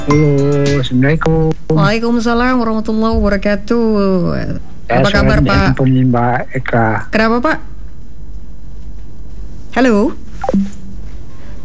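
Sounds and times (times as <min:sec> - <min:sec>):
speech: 0:00.0 - 0:07.7, 0:09.8 - 0:10.8
quiet hum: 0:00.0 - 0:11.6
telephone disconnect beeps after a call is cut off: 0:10.4 - 0:10.8.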